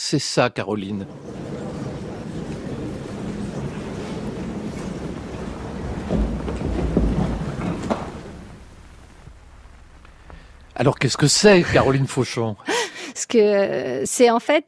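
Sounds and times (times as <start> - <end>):
speech: 0.1 - 1.4, 10.8 - 14.6
theatre audience chatter of many indistinct voices: 0.8 - 8.6
small knocks: 2.3 - 9.4.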